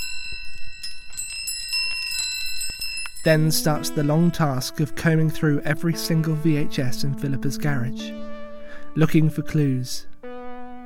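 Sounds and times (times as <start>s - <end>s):
wind chimes jingling as someone moves through them in a small back garden: 0.0s - 4.6s
speech: 3.2s - 8.3s, 9.0s - 10.1s.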